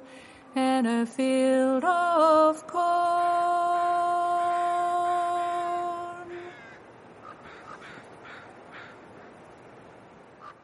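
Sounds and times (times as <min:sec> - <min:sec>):
steady hiss: 0:00.0 - 0:10.6
speech: 0:00.8 - 0:03.7
crows cawing: 0:06.4 - 0:09.4, 0:10.4 - 0:10.6.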